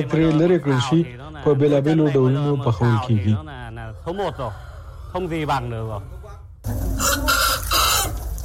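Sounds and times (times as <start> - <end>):
speech: 0.0 - 6.8
chickens clucking on a farm: 3.8 - 8.4.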